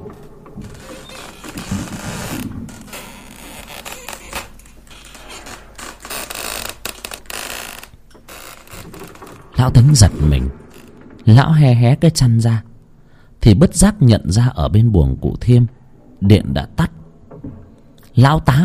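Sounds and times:
wooden doors rattling and creaking in wind from a yard: 0:00.0 - 0:11.8, 0:17.0 - 0:18.0
speech: 0:09.6 - 0:10.6, 0:11.2 - 0:12.7, 0:13.4 - 0:17.0, 0:18.2 - 0:18.6.

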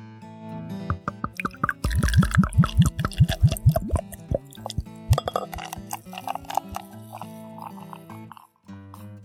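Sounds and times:
beer pouring into a glass: 0:01.2 - 0:08.5.

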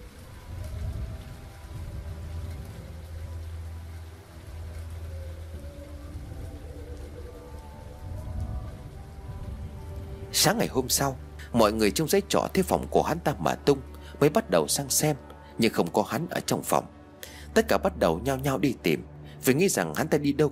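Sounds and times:
soft low rumbling: 0:00.0 - 0:14.2
rain pattering: 0:00.0 - 0:20.4
speech: 0:10.4 - 0:20.4.

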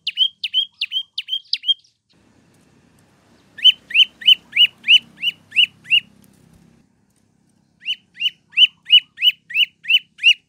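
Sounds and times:
prinia song used for training captive birds: 0:00.0 - 0:06.9, 0:07.6 - 0:10.4
faint low hum: 0:02.2 - 0:09.6.

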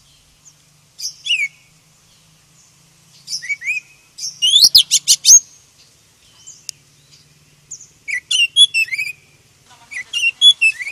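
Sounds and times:
Oriental magpie-robin singing whistled slur and sharp chirps: 0:00.0 - 0:10.9.

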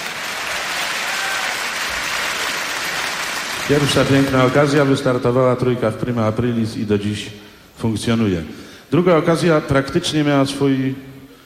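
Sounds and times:
audience applause at a radio station's anniversary celebration: 0:00.0 - 0:04.8
speech: 0:03.7 - 0:11.1.

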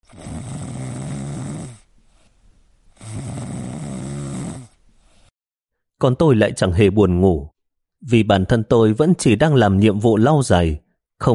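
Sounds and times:
people snoring on bunk beds in a rest room: 0:00.0 - 0:01.9, 0:03.0 - 0:04.8
speech: 0:06.0 - 0:11.3.

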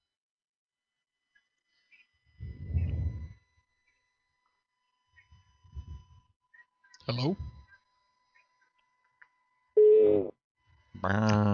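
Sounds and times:
faint hum: 0:01.8 - 0:11.5
speech: 0:07.1 - 0:07.5, 0:11.0 - 0:11.5
telephone busy signal after phone call drops: 0:09.8 - 0:10.3.

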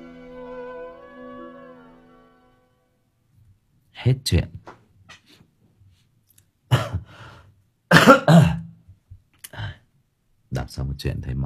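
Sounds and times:
speech: 0:04.0 - 0:04.7, 0:10.8 - 0:11.4
ill person clearing throat: 0:06.7 - 0:07.1, 0:07.9 - 0:08.8
ill person coughing: 0:06.7 - 0:07.1, 0:07.9 - 0:08.8.

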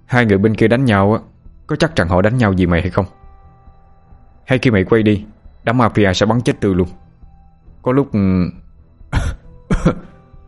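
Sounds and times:
speech: 0:00.1 - 0:03.2, 0:04.5 - 0:07.1, 0:07.8 - 0:10.1
man coughing: 0:09.1 - 0:10.2.

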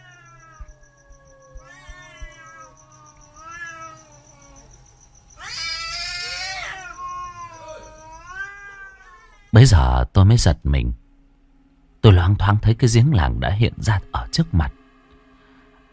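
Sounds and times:
two cats fighting, growling and yowling: 0:00.0 - 0:09.5
speech: 0:09.5 - 0:11.0, 0:12.1 - 0:14.8.

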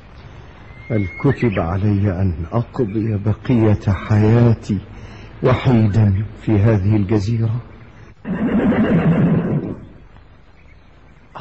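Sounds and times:
speech: 0:00.9 - 0:09.0
horse neighing: 0:08.2 - 0:10.0.

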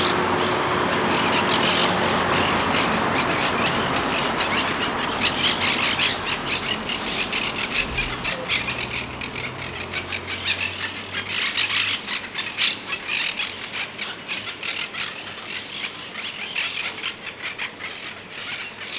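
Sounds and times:
monk parakeets screeching: 0:00.0 - 0:18.9
low hum: 0:01.9 - 0:12.3.

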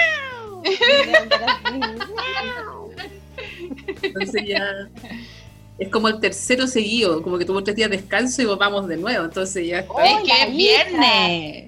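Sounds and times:
female cat in heat yowling and meowing: 0:00.0 - 0:00.7, 0:02.0 - 0:02.9
laughter: 0:00.6 - 0:04.8
speech: 0:04.1 - 0:11.6.

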